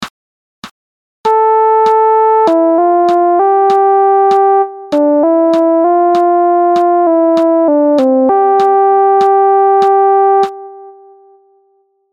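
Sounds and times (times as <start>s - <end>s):
sad melody: 1.3s - 11.5s.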